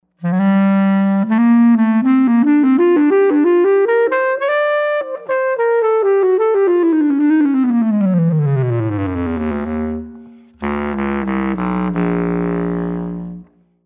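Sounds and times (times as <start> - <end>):
bass clarinet: 0.2 - 13.6.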